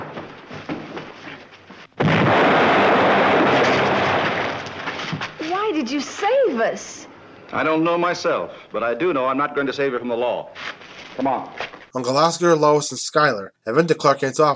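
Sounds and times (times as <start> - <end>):
radio-drama explosion sound effect: 2.0 - 5.0
speech: 6.7 - 10.6, 11.2 - 14.5.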